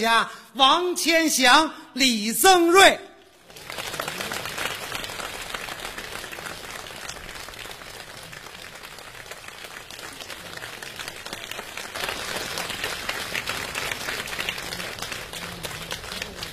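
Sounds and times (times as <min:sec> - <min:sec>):
speech: 0:00.0 - 0:03.1
audience applause at a live crossed-talk comedy show: 0:03.3 - 0:16.5.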